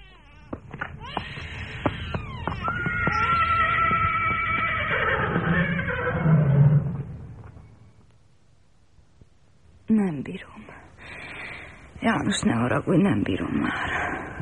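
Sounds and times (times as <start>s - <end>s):
horse hoof clops and knocks: 0.4s - 5.2s
horses neighing and whinnying: 1.2s - 7.1s
speech: 10.0s - 10.7s, 12.0s - 14.4s.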